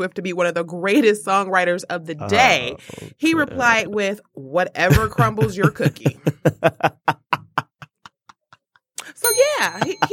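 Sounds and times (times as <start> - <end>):
speech: 0.0 - 7.2, 9.3 - 10.1
laughter: 4.9 - 8.6, 9.7 - 10.1
hand bell dinging: 9.2 - 10.1.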